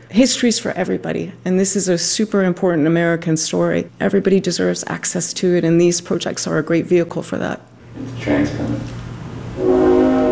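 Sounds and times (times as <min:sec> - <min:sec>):
speech: 0:00.1 - 0:09.0
freight train whistle from railroad tracks behind a house: 0:09.5 - 0:10.3.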